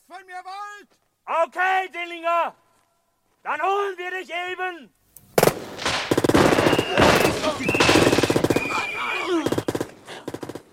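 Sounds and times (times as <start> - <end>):
speech: 0.2 - 2.6, 3.4 - 5.0
machine-gun fire in a shootout: 5.4 - 10.7
sharper separate gunshots in a shootout: 5.4 - 10.7.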